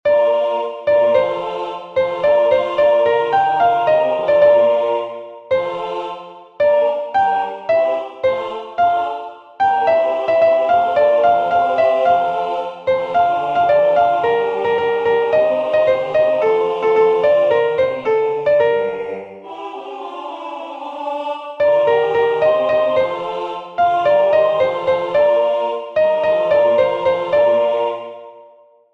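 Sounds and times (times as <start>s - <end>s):
soprano chorus singing: 0.1s - 28.8s.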